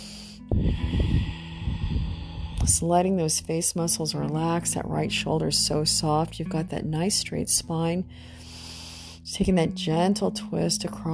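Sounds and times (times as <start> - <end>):
breathing through the nose: 0.0 - 2.7, 8.1 - 9.3
low hum: 0.0 - 3.0
speech: 0.6 - 1.2, 2.7 - 8.4, 9.3 - 11.1.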